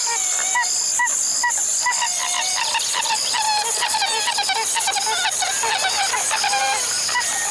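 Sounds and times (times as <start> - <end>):
steady high insect-like hiss in a marsh: 0.0 - 7.4
pied-billed grebe calling in hollow honking notes: 1.9 - 7.4.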